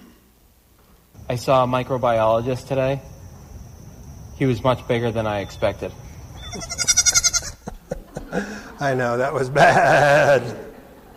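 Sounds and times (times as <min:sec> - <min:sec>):
speech: 0:01.3 - 0:03.1, 0:04.4 - 0:06.9, 0:08.3 - 0:10.7
goat giving a loud wavering bleat: 0:06.3 - 0:07.7
laughter: 0:06.6 - 0:11.1.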